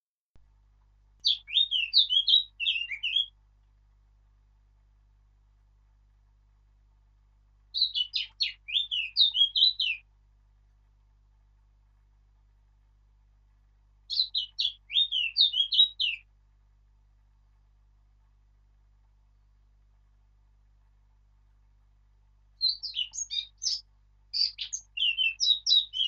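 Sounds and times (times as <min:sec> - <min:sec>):
Sylvia atricapilla: 0:01.2 - 0:03.3, 0:07.7 - 0:10.0, 0:14.1 - 0:16.2, 0:22.6 - 0:26.0.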